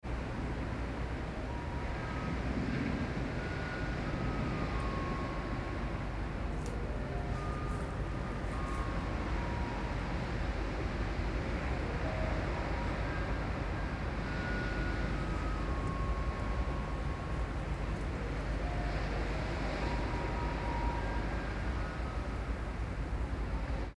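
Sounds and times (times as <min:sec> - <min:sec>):
garbage truck: 0:00.2 - 0:22.9.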